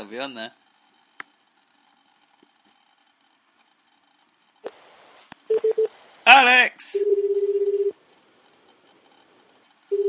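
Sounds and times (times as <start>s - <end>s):
speech: 0.0s - 0.6s, 5.7s - 7.6s
telephone ringing tone: 5.5s - 5.9s, 7.0s - 8.0s.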